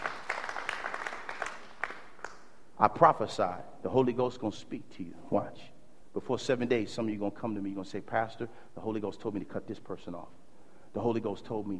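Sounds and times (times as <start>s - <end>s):
congregation clapping hands during a church service: 0.0s - 2.6s
speech: 2.8s - 11.7s.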